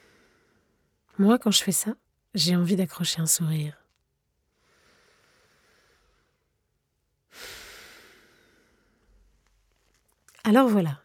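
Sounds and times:
slow relaxed breathing during a relaxation exercise: 0.0 - 1.0, 4.5 - 10.0
speech: 1.2 - 3.8, 10.5 - 11.0.

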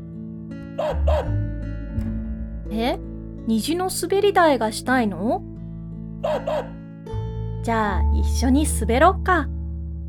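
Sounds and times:
speech: 0.8 - 2.1, 2.7 - 5.5, 6.2 - 6.8, 7.6 - 9.6
puppy barking: 6.2 - 6.8.

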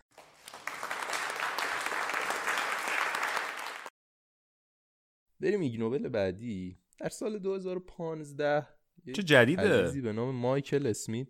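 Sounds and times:
applause from many hands: 0.0 - 3.9
speech: 5.4 - 11.2.

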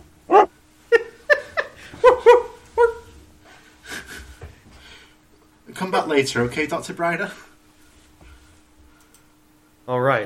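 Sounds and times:
dog yelping barks sound effect: 2.0 - 3.0
speech: 5.8 - 7.5, 9.9 - 10.2.

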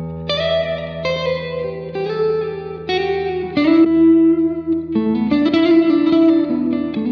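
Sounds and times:
electric guitar chords ringing through reverb pedals: 0.0 - 7.1.

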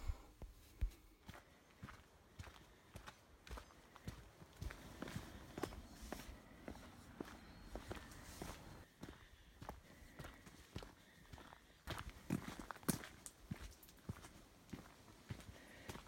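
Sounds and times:
footsteps crunching on a gritty ash path: 0.3 - 16.0.

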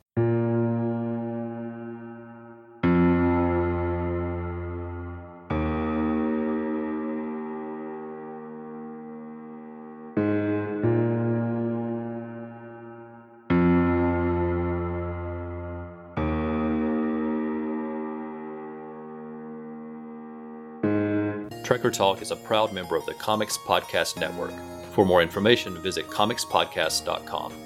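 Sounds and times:
instrumental background music of slow sustained synth chords: 0.2 - 27.6
speech: 21.7 - 27.6.

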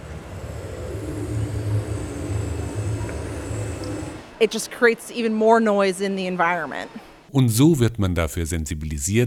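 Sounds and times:
motorboat propeller churning underwater: 0.0 - 4.3
speech: 4.4 - 9.2.

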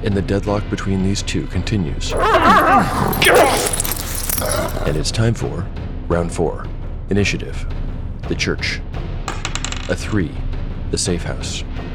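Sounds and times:
speech: 0.0 - 9.0, 9.9 - 11.8
guard dog barking and growling: 2.1 - 5.1.

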